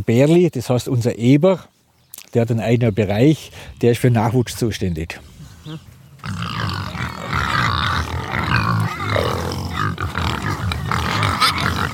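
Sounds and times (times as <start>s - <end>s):
speech: 0.0s - 6.9s
group of fattening pigs grunting and squealing: 5.6s - 11.9s.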